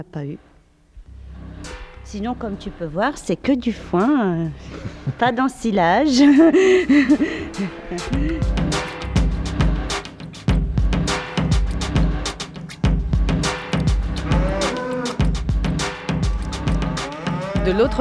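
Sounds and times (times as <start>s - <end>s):
speech: 0.0s - 0.5s, 2.1s - 8.6s, 17.7s - 17.9s
steady clanking in a barn: 1.0s - 17.9s
laughter: 4.4s - 9.1s, 16.4s - 17.9s
calves mooing inside a barn: 7.0s - 8.8s, 13.8s - 17.9s.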